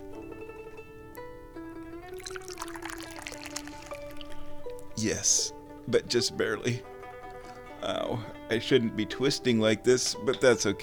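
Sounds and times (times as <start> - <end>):
tea pouring from a teapot into a cup: 2.0 - 4.9
speech: 5.0 - 6.9, 7.8 - 10.8.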